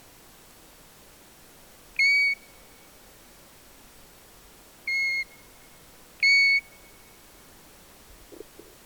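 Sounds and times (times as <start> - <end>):
faint hiss: 0.0 - 8.8
European golden plover Pluvialis apricaria plaintive whistles: 4.9 - 5.3, 6.2 - 6.8.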